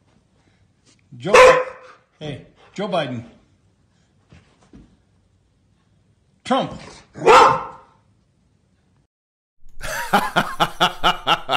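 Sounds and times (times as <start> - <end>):
speech: 1.1 - 3.4, 6.5 - 7.6
dog barking: 1.3 - 2.0, 7.2 - 8.0
laughter: 9.8 - 11.5.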